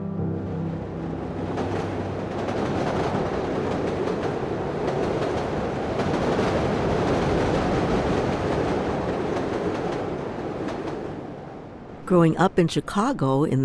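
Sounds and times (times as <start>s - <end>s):
elevated commuter train rumbling along its rails: 0.2s - 12.5s
faint rhythmic clatter of commuter train wheels: 1.4s - 11.2s
speech: 12.1s - 13.6s.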